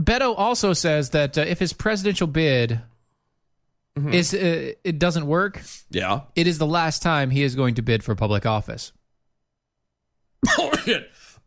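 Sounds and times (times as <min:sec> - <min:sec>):
speech: 0:00.0 - 0:02.9, 0:04.0 - 0:09.0, 0:10.4 - 0:11.2
person with something caught in the throat clearing throat and coughing: 0:10.4 - 0:11.4.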